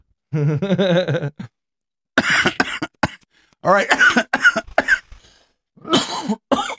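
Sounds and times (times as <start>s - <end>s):
speech: 0.3s - 1.5s, 3.7s - 4.3s
person coughing after smoking from a pipe: 2.2s - 5.1s, 5.8s - 6.7s.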